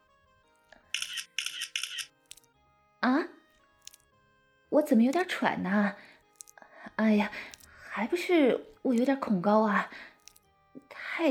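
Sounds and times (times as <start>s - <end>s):
mobile phone camera shutter bursts: 0.9s - 2.4s
speech: 4.8s - 6.1s, 7.0s - 10.1s.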